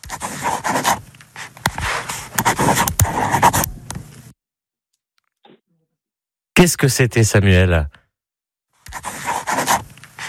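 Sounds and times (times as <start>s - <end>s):
pen scratching across paper while writing a signature: 0.0s - 3.7s, 8.9s - 10.2s
speech: 6.6s - 8.0s.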